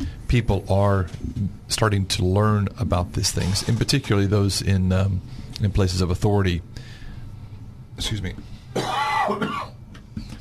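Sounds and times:
speech: 0:00.3 - 0:07.0, 0:08.0 - 0:09.7
harsh cough away from the microphone: 0:08.7 - 0:09.8
throat-clearing rasp: 0:08.8 - 0:09.8.

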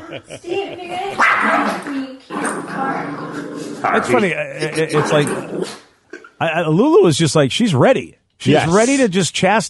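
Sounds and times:
laughter: 0:00.0 - 0:01.2
speech: 0:00.1 - 0:05.8, 0:06.4 - 0:09.6
dog barking and yelping: 0:01.2 - 0:01.8.

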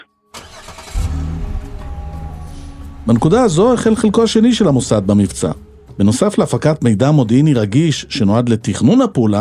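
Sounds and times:
car engine cranking and revving near the beach: 0:00.4 - 0:06.8
speech: 0:03.1 - 0:09.4.

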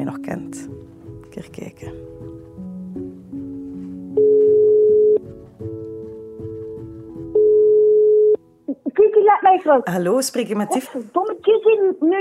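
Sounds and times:
speech: 0:00.1 - 0:02.3, 0:09.6 - 0:12.2
phone line ringing tone while a call is placed: 0:04.2 - 0:05.2, 0:07.3 - 0:08.4
shorter stepped phone beeps: 0:04.2 - 0:05.2, 0:07.4 - 0:08.4.

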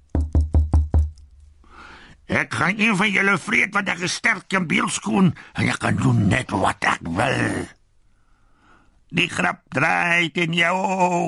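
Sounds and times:
leopard's paw knocking on the stone wall of a sheep kraal: 0:00.1 - 0:01.2
speech: 0:02.3 - 0:07.8, 0:09.1 - 0:11.2.

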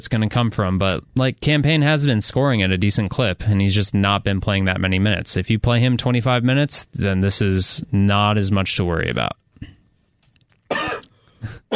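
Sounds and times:
speech: 0:00.0 - 0:09.7
harsh cough: 0:10.7 - 0:11.7
throat clearing: 0:10.7 - 0:11.7.

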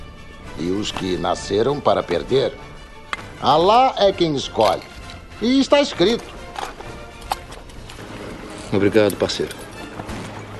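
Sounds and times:
speech: 0:00.6 - 0:02.8, 0:03.4 - 0:06.4, 0:08.7 - 0:09.6
horse hooves galloping toward the finish line: 0:05.6 - 0:10.5.

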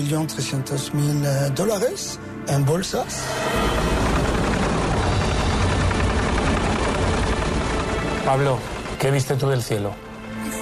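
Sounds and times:
speech: 0:00.0 - 0:04.2, 0:08.3 - 0:10.6
helicopter engine and wind noise: 0:03.0 - 0:10.6
helicopter rotor thumping in a rapid choppy rhythm: 0:03.4 - 0:10.2.

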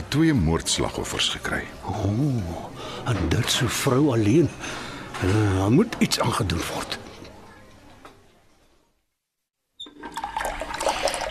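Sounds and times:
speech: 0:00.1 - 0:07.0
faucet running into a sink: 0:09.8 - 0:11.3.

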